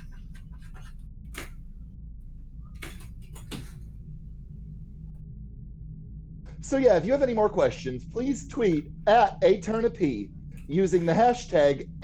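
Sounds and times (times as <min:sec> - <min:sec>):
door scraping and bumping as a fat cat nudges it open: 0:00.0 - 0:01.7, 0:02.7 - 0:04.0
steady low rumble: 0:00.0 - 0:12.0
speech: 0:06.6 - 0:12.0.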